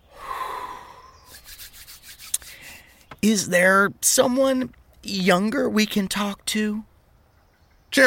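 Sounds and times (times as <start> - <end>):
soft drawn breath: 0.0 - 3.1
dry hands rubbing briskly together: 1.3 - 3.1
speech: 3.2 - 6.9.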